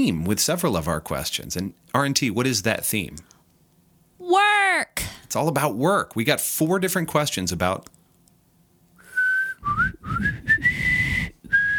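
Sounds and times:
speech: 0:00.0 - 0:03.4, 0:04.2 - 0:08.0
person whistling a tune: 0:09.1 - 0:11.7.

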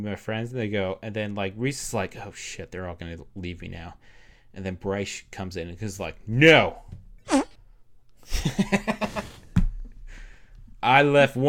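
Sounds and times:
speech: 0:00.0 - 0:07.4, 0:08.4 - 0:09.0, 0:10.8 - 0:11.4
voice making a blubbery raspberry imitating a fart: 0:07.3 - 0:07.6.

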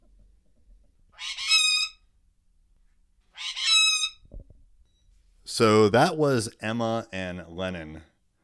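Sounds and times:
pet bird calling harshly: 0:01.2 - 0:02.1, 0:03.3 - 0:04.2
speech: 0:05.6 - 0:08.1.

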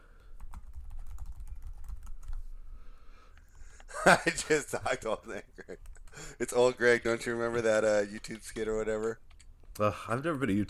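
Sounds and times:
typing on a computer keyboard: 0:00.3 - 0:02.4
speech: 0:04.0 - 0:10.6.

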